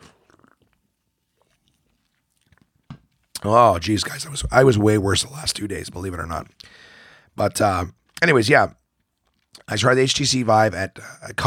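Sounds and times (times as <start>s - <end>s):
swallow: 0.0s - 0.8s
person sipping a drink at the microphone: 0.0s - 2.7s
speech: 3.4s - 8.8s, 9.6s - 11.4s.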